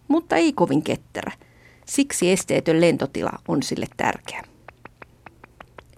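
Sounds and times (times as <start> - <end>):
steady low hum: 0.0 - 5.9
speech: 0.1 - 4.5
northern bat calls as dry clicking pulses: 3.4 - 5.9.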